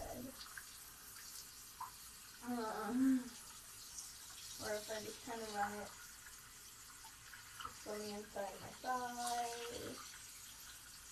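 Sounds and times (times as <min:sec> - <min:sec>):
shower water spraying on a person's body: 0:00.0 - 0:11.1
speech: 0:00.2 - 0:00.6, 0:02.4 - 0:03.4, 0:04.6 - 0:06.0, 0:07.8 - 0:10.2
person murmuring: 0:02.5 - 0:03.4.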